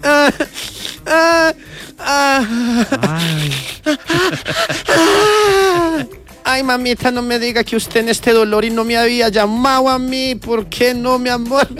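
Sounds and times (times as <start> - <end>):
laughter: 0.0 - 9.2, 9.8 - 11.7
voice imitating a young woman crying and wailing: 1.1 - 6.1
speech: 2.4 - 3.7, 6.6 - 11.7.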